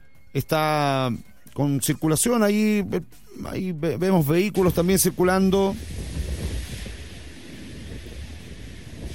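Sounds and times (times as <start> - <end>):
speech: 0.4 - 6.0
wind buffeting the microphone: 4.6 - 9.1
surf breaking along a shore: 5.2 - 9.1.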